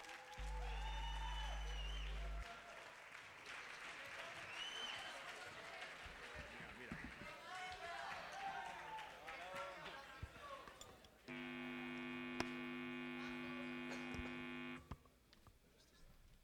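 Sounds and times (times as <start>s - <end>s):
scattered crowd cheers and whistles: 0.0s - 5.6s, 7.9s - 9.3s
crowd applauding for a band: 0.0s - 14.8s
loud low hum: 0.4s - 2.5s, 11.3s - 14.8s.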